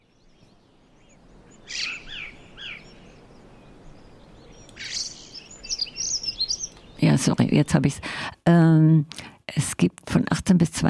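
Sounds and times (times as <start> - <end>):
recorded birdsong played back as background: 0.0 - 8.4
steady low background hiss: 0.0 - 10.8
speech: 7.2 - 10.8.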